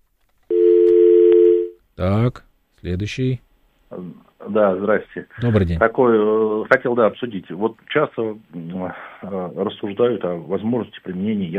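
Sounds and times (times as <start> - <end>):
telephone line tone of an incoming call: 0.5 - 1.8
speech: 2.0 - 11.5.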